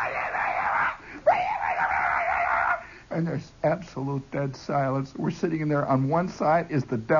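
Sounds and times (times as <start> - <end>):
voice imitating a boy yelling in the woods: 0.0 - 2.8
speech: 3.1 - 7.1.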